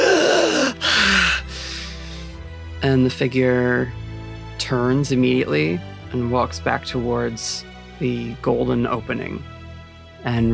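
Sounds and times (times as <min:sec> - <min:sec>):
woman gasping for breath as she revives: 0:00.0 - 0:02.4
speech: 0:02.8 - 0:09.5, 0:10.2 - 0:10.5.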